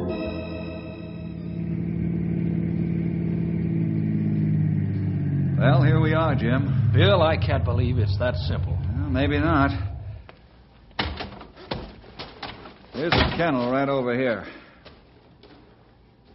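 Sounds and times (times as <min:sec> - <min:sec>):
car engine running through gear changes: 0:00.1 - 0:10.3
speech: 0:06.4 - 0:06.7, 0:07.5 - 0:09.9, 0:13.0 - 0:14.6.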